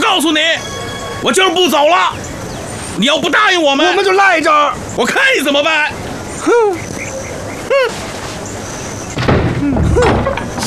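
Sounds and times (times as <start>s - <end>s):
speech: 0.1s - 2.3s, 3.0s - 6.9s, 7.8s - 8.0s
shuffling and rattling: 7.7s - 10.6s
door creaking open with squealing hinges: 9.1s - 10.6s.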